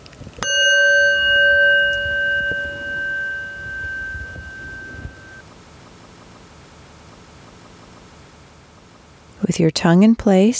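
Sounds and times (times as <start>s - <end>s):
meditation chime struck for a breathing meditation: 0.4s - 5.4s
speech: 9.5s - 10.5s.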